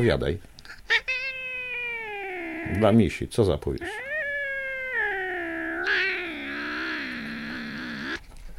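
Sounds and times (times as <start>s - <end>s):
speech: 0.0s - 0.5s, 2.7s - 4.0s
cat meowing: 0.9s - 3.0s, 3.8s - 8.2s.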